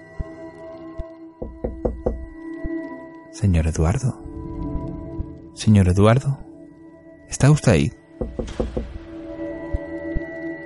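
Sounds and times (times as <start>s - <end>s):
knocking on a wooden bedroom door: 1.4s - 2.4s, 8.2s - 9.0s
speech: 3.4s - 4.2s, 5.6s - 6.4s, 7.3s - 8.9s.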